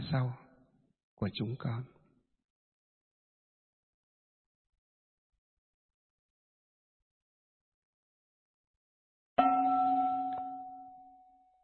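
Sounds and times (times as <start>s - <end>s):
speech: 0.1s - 0.4s, 1.2s - 2.0s
bell struck during a tea offering: 9.4s - 11.4s.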